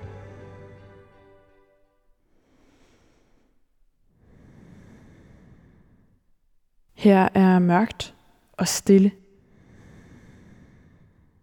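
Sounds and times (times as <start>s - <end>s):
soft steady breathing in a dark room: 2.2s - 6.6s, 9.3s - 11.4s
speech: 7.0s - 9.2s.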